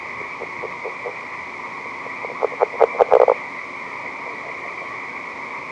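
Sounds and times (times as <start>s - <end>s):
California red-legged frog uttering low knocking pulses: 0.3s - 1.2s, 2.1s - 3.4s.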